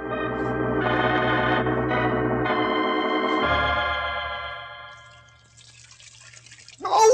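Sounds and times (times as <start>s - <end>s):
sustained musical chord: 0.0s - 5.1s
kettle water poured into tin bathtub: 4.9s - 7.1s.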